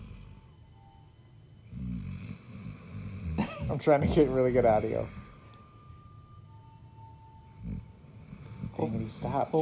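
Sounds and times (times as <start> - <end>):
pit bull lab mix dog snoring: 0.0 - 0.6, 1.6 - 5.5, 7.4 - 9.6
speech: 3.7 - 5.2, 9.3 - 9.6.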